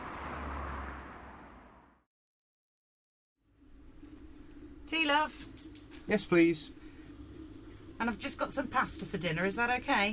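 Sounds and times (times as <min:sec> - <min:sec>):
passing traffic rushing: 0:00.0 - 0:02.0
vehicle roaring: 0:00.0 - 0:02.0
speech: 0:04.9 - 0:06.8, 0:08.0 - 0:10.1.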